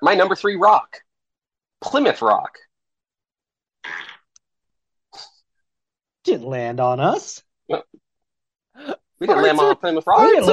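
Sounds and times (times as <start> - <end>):
speech: 0.0 - 1.1, 1.8 - 2.7, 3.8 - 4.1, 6.3 - 8.0, 8.8 - 10.5
loud raspy fart: 3.8 - 4.3.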